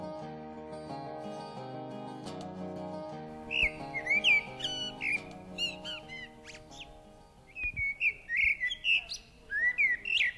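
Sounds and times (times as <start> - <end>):
blackbird singing in the top of a pine tree in Åhus: 3.5 - 10.3.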